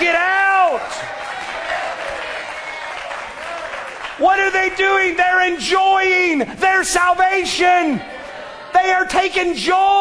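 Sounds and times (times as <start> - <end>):
church congregation clapping: 0.6 - 5.0
speech: 4.5 - 8.1, 8.7 - 9.9.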